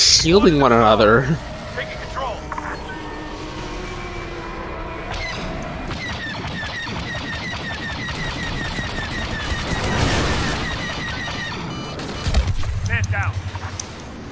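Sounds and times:
speech: 0:00.2 - 0:01.9
rapid gunfire: 0:05.9 - 0:14.0.

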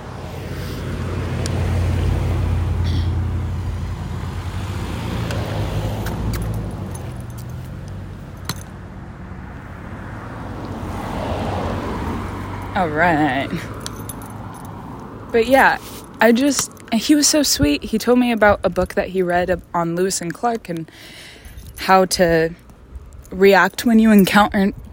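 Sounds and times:
car passing by: 0:00.0 - 0:17.8
speech: 0:12.8 - 0:13.7, 0:15.3 - 0:22.6, 0:23.3 - 0:24.9.

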